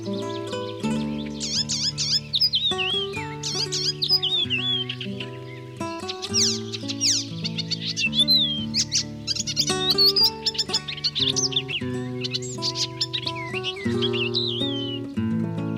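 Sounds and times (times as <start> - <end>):
icterine warbler singing chirps, whistles and scratchy notes: 0.0 - 15.7
instrumental music bed: 0.0 - 15.7.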